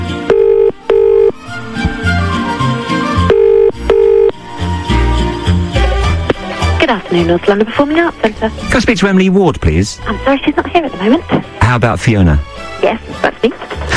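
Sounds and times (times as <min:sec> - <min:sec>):
music: 0:00.0 - 0:13.9
telephone ringing tone: 0:00.1 - 0:01.4, 0:03.3 - 0:04.4
speech: 0:07.1 - 0:13.9.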